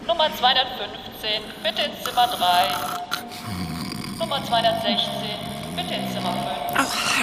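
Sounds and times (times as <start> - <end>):
speech: 0.2 - 3.6, 4.2 - 7.2
person snoring with a rough rattling rasp: 1.6 - 7.2.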